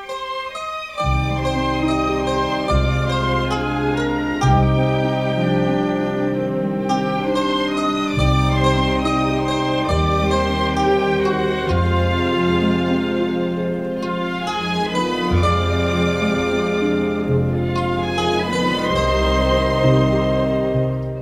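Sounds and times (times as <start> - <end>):
sustained strings in a lush orchestral theme: 0.0 - 21.2
steady low bass line in an orchestral theme: 1.0 - 21.2.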